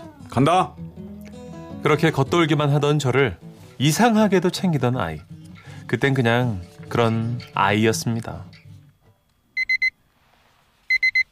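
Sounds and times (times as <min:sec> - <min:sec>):
speech: 0:00.3 - 0:00.8, 0:01.8 - 0:05.3, 0:05.9 - 0:08.6
pager beeping with incoming page: 0:09.6 - 0:10.0, 0:10.9 - 0:11.2.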